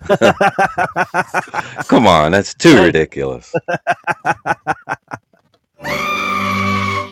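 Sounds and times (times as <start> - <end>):
laughter: 0.0 - 2.0, 3.5 - 5.4
speech: 0.1 - 5.2
goat giving a long piercing scream: 5.8 - 7.1.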